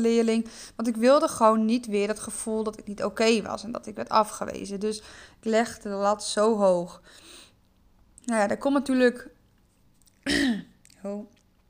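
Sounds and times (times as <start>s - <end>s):
speech: 0.0s - 7.4s, 8.2s - 9.4s, 10.2s - 11.4s
throat clearing with something stuck in the throat: 10.2s - 10.8s.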